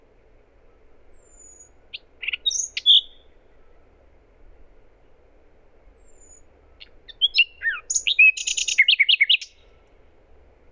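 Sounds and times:
Luscinia megarhynchos common nightingale song: 0:00.6 - 0:03.9, 0:05.9 - 0:09.9.

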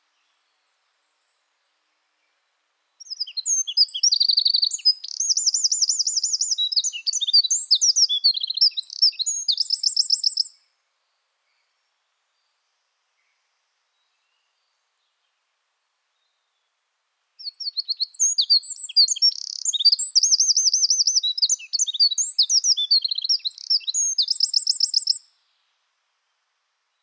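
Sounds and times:
Eurasian wren Troglodytes troglodytes singing high chips and rattling trills: 0:03.0 - 0:10.6, 0:17.4 - 0:25.3.

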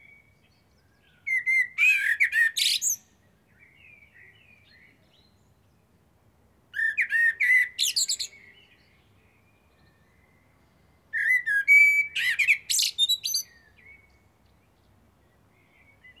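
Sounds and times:
common blackbird Turdus merula fluting song: 0:00.0 - 0:03.1, 0:06.8 - 0:09.0, 0:09.8 - 0:14.2.

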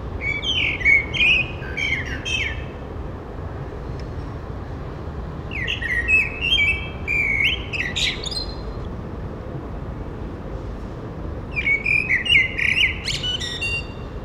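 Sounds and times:
Eurasian blackbird Turdus merula singing fluty whistles and scratchy twitters: 0:00.2 - 0:02.8, 0:05.5 - 0:08.9, 0:11.5 - 0:14.1.

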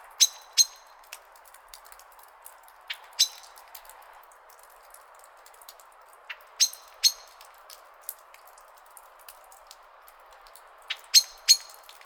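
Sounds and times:
common blackbird chink calls: 0:00.2 - 0:00.9, 0:02.9 - 0:03.6, 0:06.6 - 0:07.4, 0:10.9 - 0:11.9.

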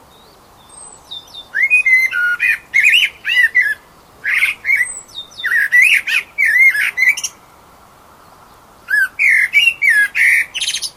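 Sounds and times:
faint steady hiss: 0:00.0 - 0:10.9
Eurasian blackbird Turdus merula squawking calls: 0:00.7 - 0:07.4, 0:08.9 - 0:10.9.

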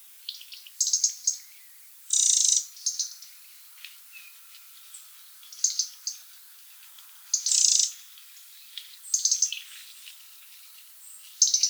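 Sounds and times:
European robin sharp high chirps: 0:00.4 - 0:03.3, 0:05.5 - 0:06.2, 0:07.3 - 0:08.0, 0:09.1 - 0:09.6, 0:11.4 - 0:11.6.

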